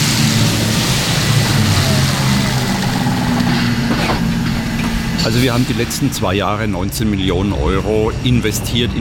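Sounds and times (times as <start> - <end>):
heavy electric tractor unit humming while rolling in to charge: 0.0 - 6.4
outdoor noise: 0.0 - 8.9
speech: 5.2 - 8.9.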